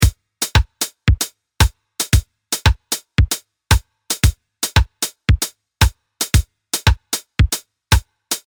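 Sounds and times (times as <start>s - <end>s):
polyrhythmic music with hemiola: 2.0s - 5.5s, 6.2s - 8.4s.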